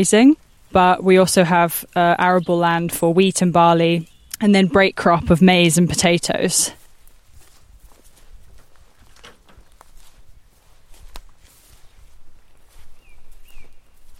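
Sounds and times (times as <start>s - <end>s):
speech: 0.0s - 6.8s
footsteps crunching over rough ground in crop fields on a farm: 0.0s - 14.1s
faint bird chirp: 4.0s - 4.4s, 12.4s - 14.1s.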